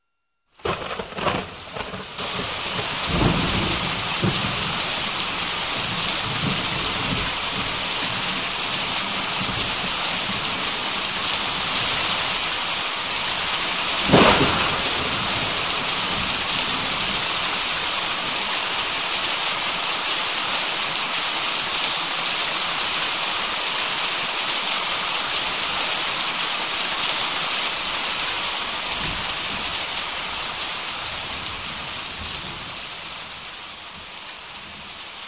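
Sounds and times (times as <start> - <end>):
thunder crackle: 0.6 - 8.3, 13.9 - 18.0
heavy rain pouring: 0.6 - 35.2.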